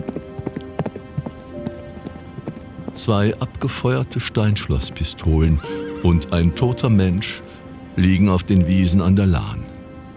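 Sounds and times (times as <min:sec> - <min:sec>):
horse hooves galloping: 0:00.0 - 0:06.9
speech: 0:03.0 - 0:09.7.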